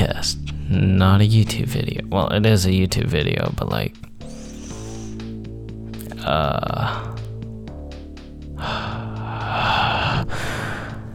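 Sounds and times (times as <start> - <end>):
speech: 0.2 - 4.1, 6.2 - 7.1
heavy breathing and gasping into a microphone: 4.2 - 7.4, 8.5 - 11.1.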